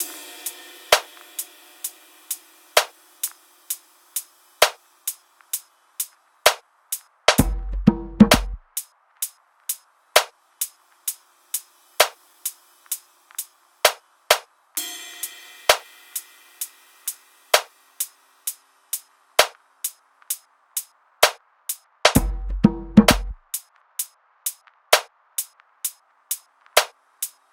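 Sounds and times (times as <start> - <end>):
drum top loop: 0.0 - 27.4.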